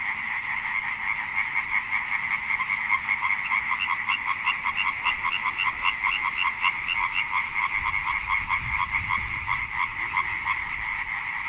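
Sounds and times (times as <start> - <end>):
tree frog chorus croaking: 0.0 - 11.4.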